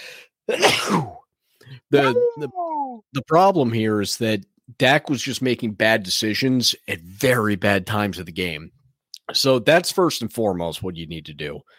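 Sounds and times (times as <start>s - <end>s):
faint breath: 0.0s - 0.4s
person sneezing: 0.5s - 1.3s
speech: 1.9s - 11.7s.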